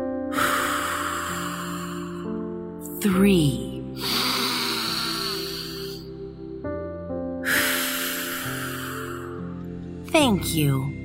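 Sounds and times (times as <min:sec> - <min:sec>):
slow deep breaths in and out during a calming exercise: 0:00.0 - 0:02.8, 0:03.9 - 0:06.4, 0:07.4 - 0:09.7
speech: 0:03.0 - 0:04.2, 0:10.2 - 0:11.0.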